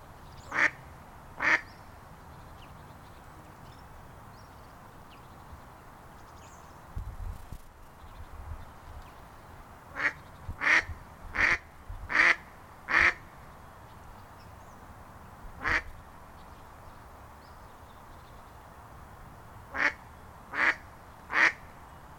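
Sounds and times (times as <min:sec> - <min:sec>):
mallard giving harsh nasal quacks: 0:00.5 - 0:00.8, 0:01.4 - 0:01.6, 0:10.0 - 0:13.2, 0:15.6 - 0:15.9, 0:19.7 - 0:21.6.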